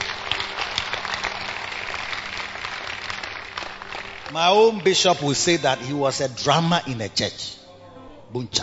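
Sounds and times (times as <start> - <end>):
crowd clapping: 0.0 - 5.9
speech: 4.3 - 7.6, 8.3 - 8.6.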